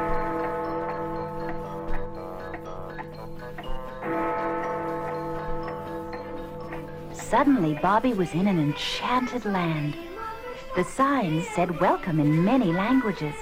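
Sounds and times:
enormous white and gold clock chiming the hour: 0:00.0 - 0:10.0
speech: 0:07.3 - 0:10.1, 0:10.8 - 0:13.4.

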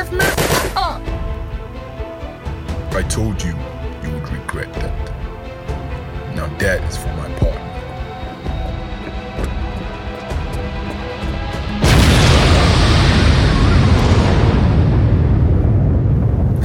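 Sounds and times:
steady tonal background: 0:00.0 - 0:16.6
speech: 0:03.0 - 0:03.7, 0:06.6 - 0:07.6
loud sustained roaring rumble: 0:07.0 - 0:16.6
massive explosion: 0:10.4 - 0:16.6.

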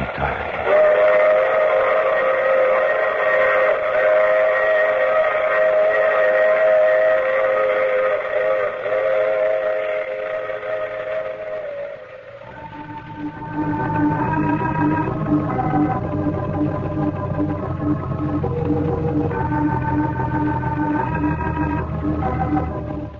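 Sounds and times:
train whistle blowing: 0:00.6 - 0:23.1.

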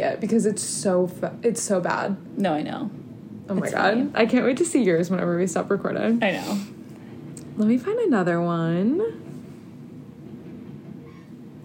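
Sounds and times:
speech: 0:00.0 - 0:06.8, 0:07.6 - 0:09.3
train rumbling past outside in a city: 0:00.0 - 0:11.6.

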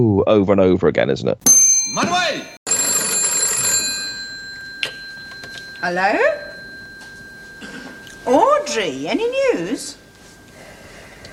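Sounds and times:
speech: 0:00.0 - 0:02.5, 0:05.8 - 0:06.4, 0:08.2 - 0:10.0
telephone bell ringing: 0:01.5 - 0:10.4.

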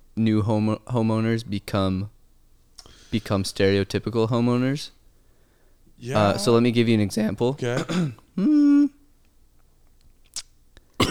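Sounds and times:
speech: 0:00.2 - 0:02.2, 0:03.1 - 0:05.0, 0:06.0 - 0:08.7
man coughing: 0:07.7 - 0:08.9
man clearing throat: 0:07.8 - 0:09.0.

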